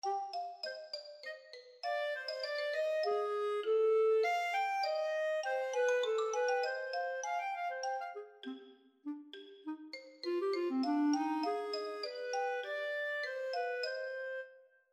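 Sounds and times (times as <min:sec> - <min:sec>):
free counterpoint music: 0:02.2 - 0:14.3.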